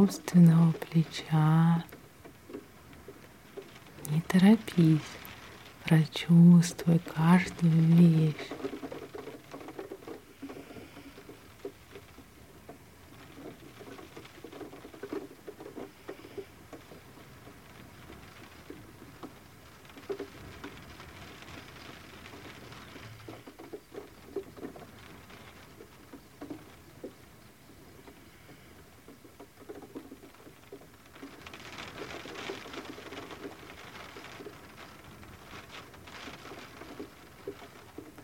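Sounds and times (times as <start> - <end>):
speech: 0.0 - 2.0, 4.1 - 5.2, 5.8 - 8.7
rain pattering during a thunderstorm in a botanical garden: 0.0 - 38.2.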